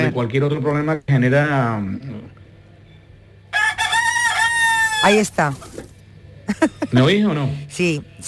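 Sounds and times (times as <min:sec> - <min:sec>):
speech: 0:00.1 - 0:02.4, 0:05.0 - 0:05.9, 0:06.5 - 0:08.2
rooster crowing: 0:03.5 - 0:05.4.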